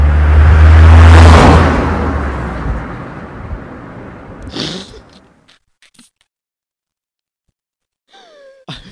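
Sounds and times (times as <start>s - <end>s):
car passing by: 0.0s - 4.5s.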